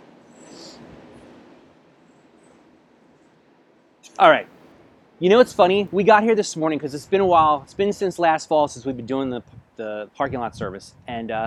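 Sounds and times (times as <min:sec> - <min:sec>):
train rumbling past: 0:00.0 - 0:08.9
speech: 0:04.1 - 0:04.5, 0:05.2 - 0:11.4.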